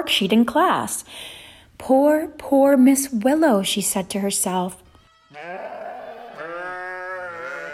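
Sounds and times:
speech: 0.0 - 5.8
sheep being rounded up bleating: 5.2 - 7.7.

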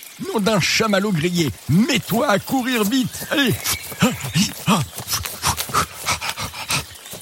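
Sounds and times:
speech: 0.2 - 5.4
black bear growling: 3.1 - 7.2.

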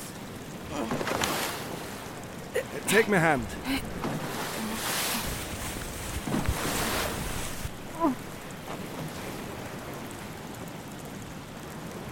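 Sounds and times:
water washing around a boat: 0.0 - 12.1
speech: 2.9 - 4.0
gusty wind rushing across the microphone: 3.9 - 7.9.

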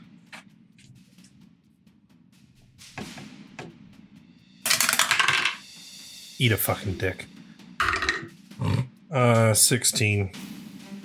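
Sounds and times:
dice clattering across a hard tabletop as players roll for initiative: 4.7 - 5.6, 7.8 - 8.2
speech: 6.4 - 7.3, 9.2 - 10.6.

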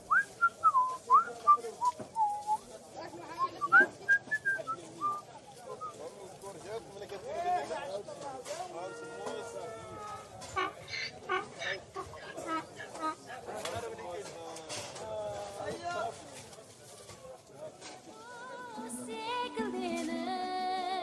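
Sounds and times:
murmuring crowd chatter: 0.0 - 21.0
person whistling a tune: 0.1 - 2.6.

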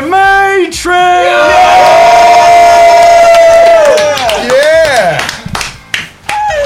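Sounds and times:
shouting voices in a stadium crowd: 1.2 - 4.3
large stadium crowd of wrestling fans roaring and cheering: 1.2 - 5.4, 6.2 - 6.6
steady clapping of a stadium crowd: 3.0 - 6.6.

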